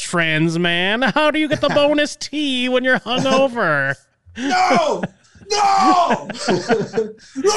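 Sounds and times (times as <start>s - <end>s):
speech: 0.1s - 7.5s
laughter: 1.0s - 2.1s, 2.8s - 3.8s, 4.4s - 7.5s
person screaming theatrically with strained ragged groans: 4.4s - 6.4s, 7.4s - 7.5s.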